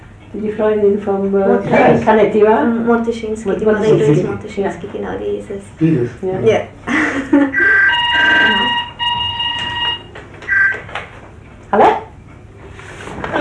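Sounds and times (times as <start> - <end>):
speech: 0.3 - 7.7
telephone ringing with a bright electronic tone: 7.5 - 10.9
scattered noises: 7.6 - 10.1.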